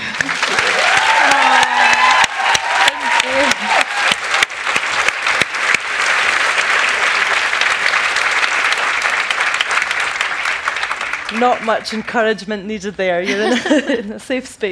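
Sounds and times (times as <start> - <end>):
sustained applause from a large audience welcoming a speaker: 0.0 - 11.9
cheers: 0.1 - 9.8
speech: 11.4 - 14.7
laughter: 13.2 - 14.1.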